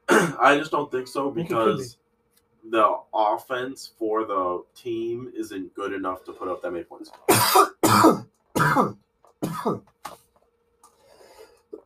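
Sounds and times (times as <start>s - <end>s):
person coughing: 0.1s - 0.4s, 7.3s - 9.9s
speech: 0.4s - 2.0s, 2.7s - 10.2s.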